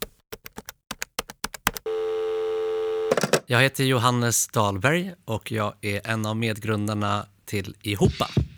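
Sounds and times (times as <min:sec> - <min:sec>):
crisp taps of digits being dialed: 0:00.0 - 0:01.9
steady loud telephone ringing tone: 0:01.9 - 0:03.4
speech: 0:03.5 - 0:08.4.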